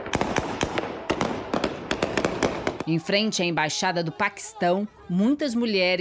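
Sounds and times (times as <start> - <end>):
gunshots fired into the air to disperse a protest crowd: 0.0 - 3.2
speech: 2.9 - 5.9.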